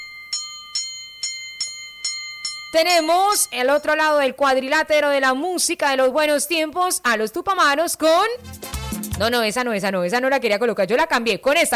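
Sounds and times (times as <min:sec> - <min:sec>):
boxing ring bell clanging: 0:00.0 - 0:04.2
speech: 0:02.7 - 0:11.7.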